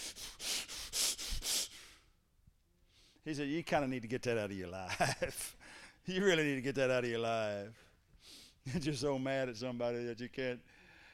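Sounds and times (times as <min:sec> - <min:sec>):
person imitating hard heavy breathing: 0:00.0 - 0:02.0
speech: 0:03.2 - 0:07.9, 0:08.6 - 0:10.8.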